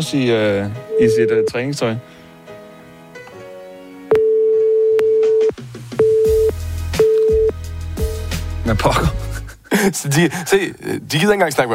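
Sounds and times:
speech: 0:00.0 - 0:02.2, 0:08.7 - 0:11.7
telephone ringback tone of an unanswered outgoing call: 0:00.9 - 0:01.5, 0:04.1 - 0:07.5.

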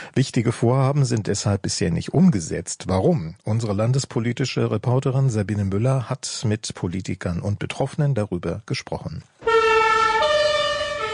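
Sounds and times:
speech: 0:00.2 - 0:09.4
constant traffic rumbling: 0:09.4 - 0:11.1
two-tone ambulance siren passing on the Frankfurter Allee in Friedrichshain: 0:09.4 - 0:11.1.

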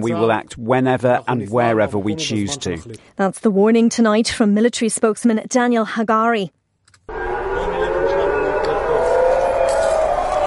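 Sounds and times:
speech: 0:00.0 - 0:07.2
air raid sirens wailing in Tel Aviv and Jerusalem: 0:07.1 - 0:10.4.

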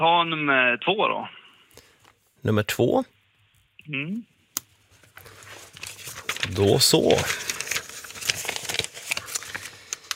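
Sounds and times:
speech: 0:00.0 - 0:01.4, 0:02.4 - 0:03.2, 0:03.9 - 0:04.3, 0:06.4 - 0:07.5
pages flipped in a binder: 0:04.9 - 0:10.1.

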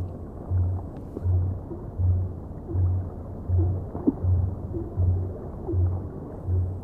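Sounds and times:
blue whale low-frequency song pulses: 0:00.2 - 0:06.8.

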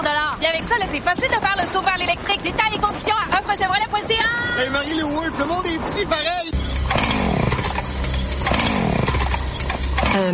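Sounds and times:
speech: 0:00.7 - 0:07.3, 0:10.1 - 0:10.3
chainsaw revving: 0:06.8 - 0:10.3.

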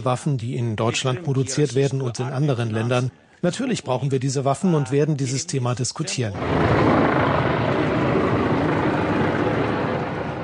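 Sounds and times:
speech: 0:00.0 - 0:07.4
helicopter rotors droning overhead: 0:06.4 - 0:10.4.

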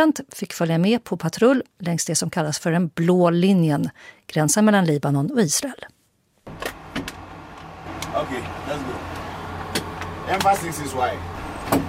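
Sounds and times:
speech: 0:00.0 - 0:06.0, 0:08.1 - 0:09.2, 0:10.3 - 0:11.3
armored car engine rumble leaving a military base: 0:06.5 - 0:11.8.

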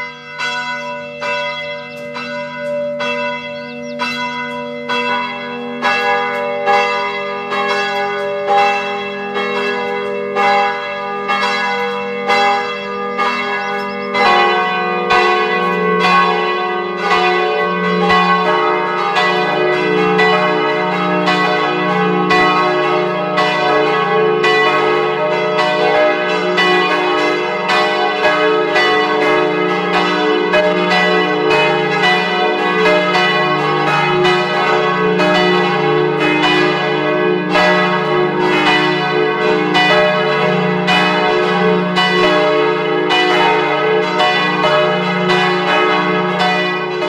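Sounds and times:
several church bells of a parish church pealing at noon in West Styria: 0:00.0 - 0:47.0.

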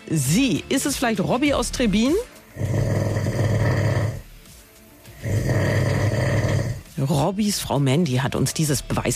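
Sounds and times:
speech: 0:00.1 - 0:02.8, 0:07.0 - 0:09.1
man snoring loudly in his sleep: 0:02.4 - 0:04.4, 0:05.1 - 0:07.0.

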